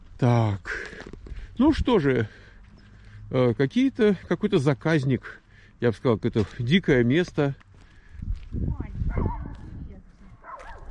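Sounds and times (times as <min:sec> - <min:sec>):
speech: 0:00.2 - 0:01.0, 0:01.6 - 0:02.4, 0:03.3 - 0:07.6, 0:08.5 - 0:09.4
small dog barking and yipping: 0:09.1 - 0:09.6, 0:10.4 - 0:10.8.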